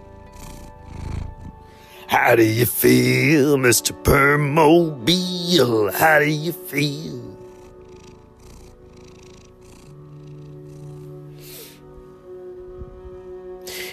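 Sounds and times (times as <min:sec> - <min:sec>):
soft hisses of cat breath: 0:00.0 - 0:02.1, 0:07.4 - 0:11.9
orange fluffy male cat purring: 0:00.0 - 0:12.1
speech: 0:02.1 - 0:07.2.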